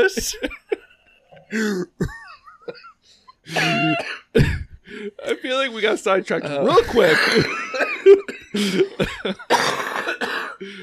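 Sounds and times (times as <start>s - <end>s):
speech: 0.0s - 0.6s, 1.5s - 2.9s, 3.5s - 10.8s
person coughing: 1.6s - 2.9s, 3.5s - 4.8s, 6.7s - 10.6s
raspy throat-clearing: 3.5s - 4.7s, 9.5s - 10.6s
laughter: 5.6s - 9.5s.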